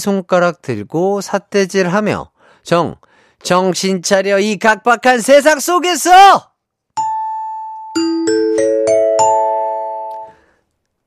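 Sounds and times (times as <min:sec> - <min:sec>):
speech: 0:00.0 - 0:06.5
bright correct-answer chime with struck bell notes: 0:07.0 - 0:10.4.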